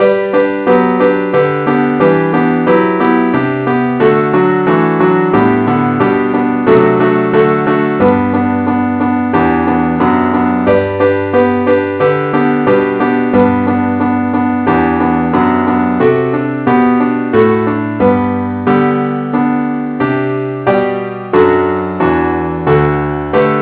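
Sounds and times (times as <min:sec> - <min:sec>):
keyboard playing in G: 0:00.0 - 0:23.6.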